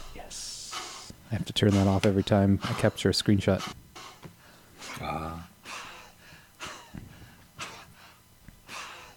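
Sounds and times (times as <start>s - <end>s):
speech: 1.3s - 3.8s
person gasping for breath: 5.6s - 9.1s.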